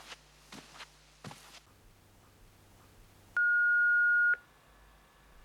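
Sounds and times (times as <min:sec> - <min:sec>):
soft footsteps in a quiet room: 0:00.0 - 0:03.2
telephone answering machine beep before message playback: 0:03.4 - 0:04.4.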